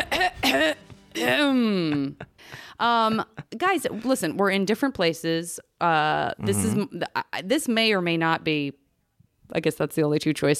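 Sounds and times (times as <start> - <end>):
exaggerated officious-sounding throat clearing: 0.0 - 2.2, 6.4 - 6.9
laughter: 0.0 - 4.2
speech: 0.5 - 8.8, 9.5 - 10.5.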